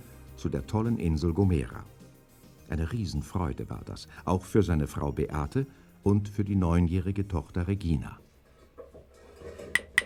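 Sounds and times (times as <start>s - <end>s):
speech: 0.4s - 2.0s, 2.7s - 8.2s
metal pot of boiling soup clattering on a stovetop: 8.7s - 10.0s.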